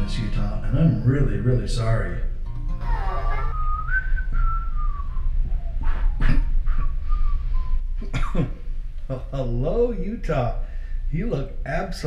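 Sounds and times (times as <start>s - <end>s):
low steady hum: 0.0s - 12.0s
speech: 0.7s - 2.3s, 9.1s - 12.0s
person whistling a classical tune: 2.9s - 8.0s.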